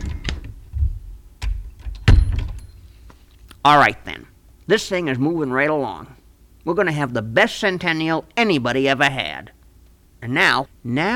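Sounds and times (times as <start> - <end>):
cooler door clunking open and shut: 0.0 - 2.7
speech: 3.6 - 9.6, 10.2 - 11.1.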